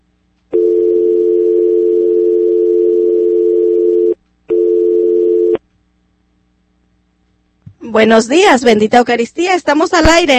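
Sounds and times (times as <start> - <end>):
telephone line tone after a call is cut off: 0.5 - 5.6
speech: 7.9 - 10.3.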